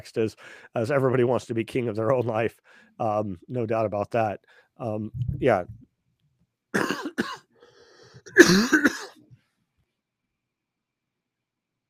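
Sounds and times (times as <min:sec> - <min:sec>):
speech: 0:00.0 - 0:05.9, 0:08.4 - 0:09.1
person coughing harshly: 0:06.8 - 0:07.4, 0:08.2 - 0:09.2.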